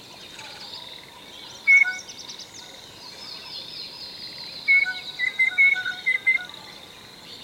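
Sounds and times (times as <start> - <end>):
blue jay whistled calls: 1.6 - 2.2, 4.7 - 6.5.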